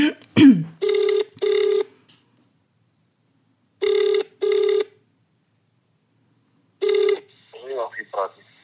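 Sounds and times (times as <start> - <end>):
UK outgoing call ringback tone: 0.8 - 1.9, 3.8 - 5.0, 6.8 - 7.4
person answering phone: 0.8 - 1.9, 3.8 - 5.0, 6.8 - 8.3.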